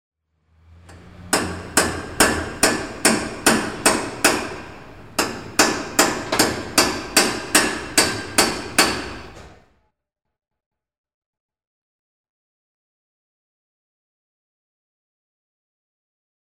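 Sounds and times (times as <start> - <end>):
hammer: 0.9 - 9.6.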